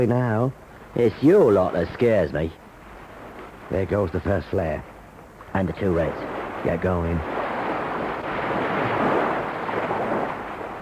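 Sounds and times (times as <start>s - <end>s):
speech: 0.0s - 2.6s, 3.7s - 4.9s, 5.5s - 7.4s
boat putting out to sea across open water: 0.0s - 10.7s
surf: 0.0s - 10.7s
wind: 0.0s - 10.7s.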